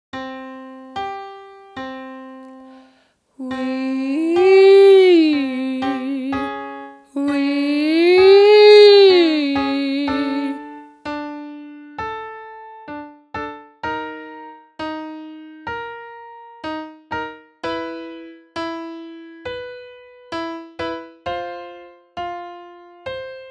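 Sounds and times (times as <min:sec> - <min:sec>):
person singing ascending sliding wee vocal exercise: 0:03.4 - 0:06.5, 0:07.2 - 0:10.6.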